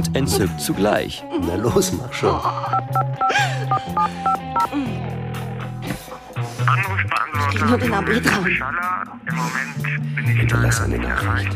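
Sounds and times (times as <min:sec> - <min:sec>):
speech: 0:00.0 - 0:11.5
telephone keypad tones as a number is dialed on a phone handset: 0:02.7 - 0:04.7.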